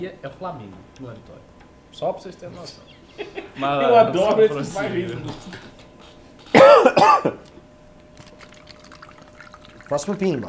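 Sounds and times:
speech: 0:00.0 - 0:05.8, 0:09.9 - 0:10.4
low steady hum: 0:00.0 - 0:10.4
laughter: 0:03.0 - 0:05.7
water poured into a glass: 0:08.2 - 0:10.4.

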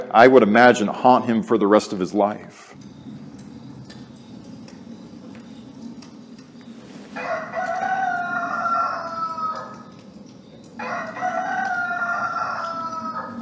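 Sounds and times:
speech: 0:00.0 - 0:02.9
faint low hum: 0:00.0 - 0:13.4
rooster crowing: 0:07.0 - 0:13.4.

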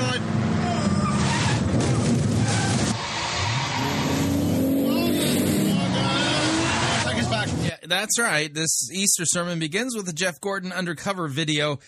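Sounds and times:
car engine roaring and revving as it drives fast: 0:00.0 - 0:07.7
tires skidding and squealing: 0:00.4 - 0:07.7
speech: 0:07.9 - 0:11.8.

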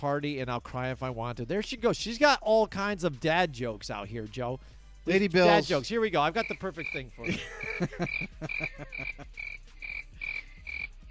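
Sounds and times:
speech: 0:00.0 - 0:09.6
laughter: 0:07.2 - 0:09.6
crickets chirping: 0:08.1 - 0:11.0.

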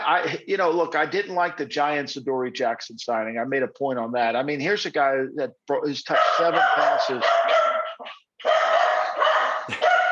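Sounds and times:
speech: 0:00.1 - 0:07.6
dog barking: 0:06.1 - 0:10.0.

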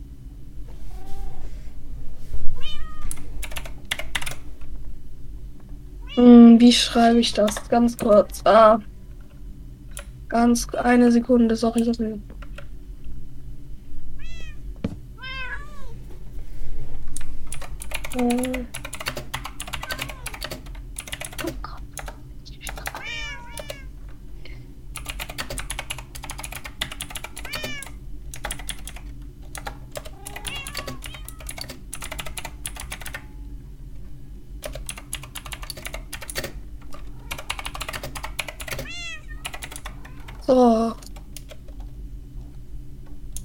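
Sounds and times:
cat meowing: 0:00.9 - 0:01.5, 0:02.6 - 0:03.2, 0:14.2 - 0:14.6, 0:15.2 - 0:16.0, 0:19.8 - 0:20.4, 0:23.0 - 0:23.9, 0:27.4 - 0:28.0, 0:30.1 - 0:31.5, 0:38.8 - 0:40.5
typing on a computer keyboard: 0:03.1 - 0:04.4, 0:07.4 - 0:08.2, 0:12.4 - 0:12.7, 0:17.5 - 0:23.0, 0:23.6 - 0:23.8, 0:25.0 - 0:33.3, 0:34.6 - 0:40.4, 0:41.0 - 0:41.9
speech: 0:06.2 - 0:08.9, 0:10.3 - 0:12.3.

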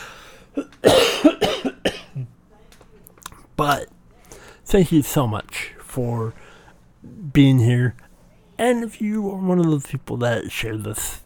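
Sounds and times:
ill person coughing harshly: 0:00.5 - 0:02.3
speech: 0:03.6 - 0:04.0, 0:04.7 - 0:06.4, 0:07.4 - 0:08.0, 0:08.6 - 0:11.2.

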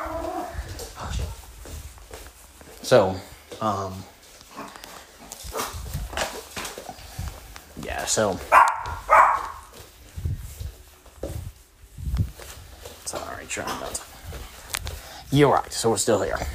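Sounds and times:
shuffling noises: 0:00.0 - 0:16.5
speech: 0:02.9 - 0:04.1, 0:08.0 - 0:08.7, 0:15.3 - 0:16.5
dog barking at a pizza delivery: 0:08.5 - 0:09.7.

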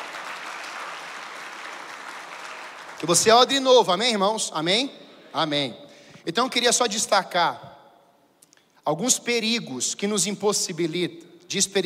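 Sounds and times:
congregation applauding during a church service: 0:00.0 - 0:04.1
speech: 0:03.0 - 0:07.7, 0:08.8 - 0:11.8.

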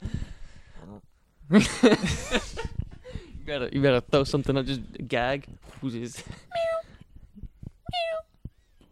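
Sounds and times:
speech: 0:01.5 - 0:02.5, 0:03.5 - 0:06.5
person imitating a cat's meow: 0:07.9 - 0:08.3.

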